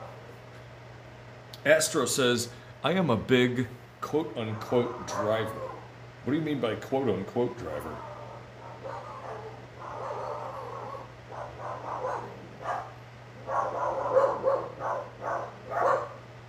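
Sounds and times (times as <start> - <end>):
steady low electrical hum: 0.0 - 16.4
speech: 1.6 - 8.1
several dogs barking and yipping outdoors: 4.5 - 5.9, 8.0 - 16.3.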